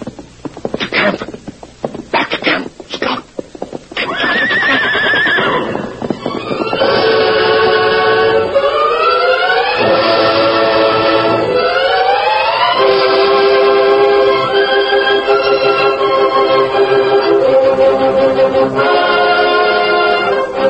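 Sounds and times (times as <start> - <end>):
galloping horse hoofbeats: 0.0 - 20.6
speech: 1.0 - 1.3
horse neighing and whinnying: 3.9 - 7.9.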